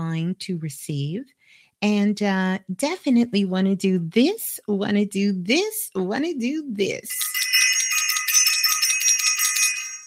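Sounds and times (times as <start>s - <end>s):
speech: 0.1s - 7.4s
small handbell ringing rapidly: 7.1s - 10.0s.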